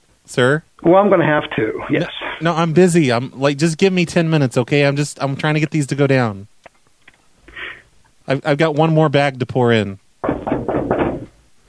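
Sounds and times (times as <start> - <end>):
speech: 0.3 - 6.5, 8.3 - 10.0
knocking on a closed bathroom door: 10.2 - 11.4.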